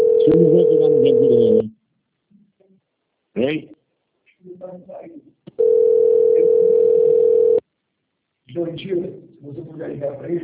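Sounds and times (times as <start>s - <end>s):
speech: 0.3s - 1.8s, 3.4s - 3.8s, 4.4s - 6.0s, 8.5s - 10.4s
telephone dial tone while placing a call: 5.6s - 7.6s.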